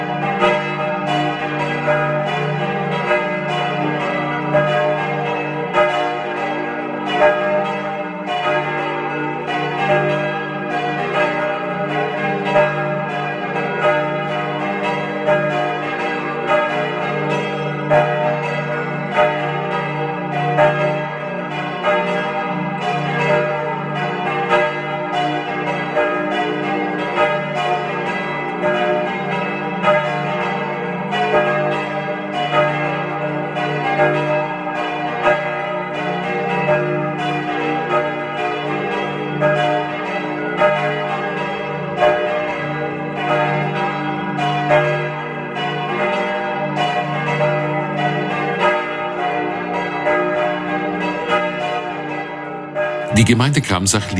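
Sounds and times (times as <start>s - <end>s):
several church bells pealing at noon: 0.0s - 53.4s
speech: 53.3s - 54.1s.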